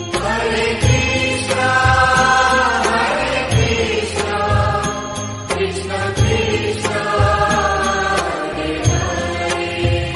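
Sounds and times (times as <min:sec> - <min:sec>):
chant ringtone: 0:00.1 - 0:10.1.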